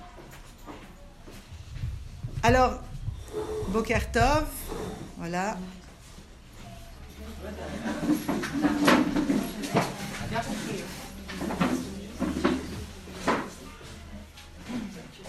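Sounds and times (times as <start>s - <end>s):
wooden chair knocking and scraping as it is set down: 1.5s - 5.3s, 7.6s - 13.8s
speech: 2.4s - 4.6s, 5.2s - 5.8s, 7.4s - 11.8s.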